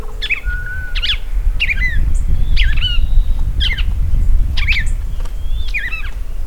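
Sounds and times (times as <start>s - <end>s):
Paroaria coronata: 0.0s - 6.4s.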